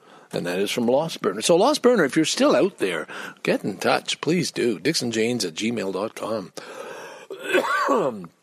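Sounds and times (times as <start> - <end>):
speech: 0.4 - 6.8, 7.5 - 8.4
person coughing raspily: 7.3 - 8.3.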